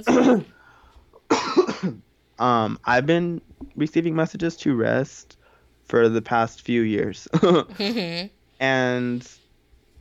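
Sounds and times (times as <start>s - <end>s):
person coughing: 0.0s - 0.6s, 1.3s - 2.0s
speech: 0.0s - 0.6s, 1.8s - 9.4s.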